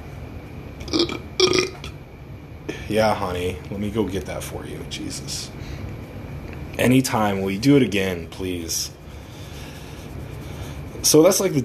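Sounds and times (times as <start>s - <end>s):
throaty burps: 0.8s - 2.0s
speech: 2.9s - 5.9s, 6.8s - 9.0s, 11.0s - 11.6s.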